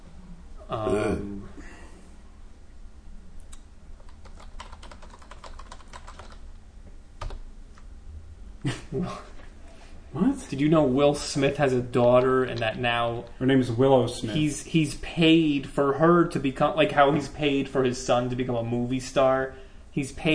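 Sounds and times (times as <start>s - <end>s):
speech: 0.7s - 1.4s, 8.6s - 9.3s, 10.1s - 20.3s
rapid typing on a computer keyboard into a search box: 4.0s - 6.4s, 7.2s - 7.4s.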